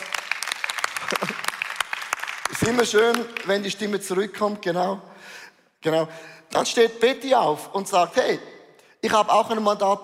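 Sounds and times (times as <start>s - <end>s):
audience applause: 0.0s - 3.8s
laughter: 1.0s - 1.6s
speech: 2.5s - 10.0s.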